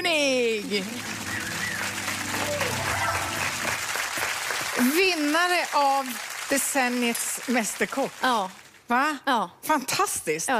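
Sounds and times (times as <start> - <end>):
speech: 0.0 - 1.2, 4.8 - 10.5
room full of people clapping for the cook: 0.5 - 8.9.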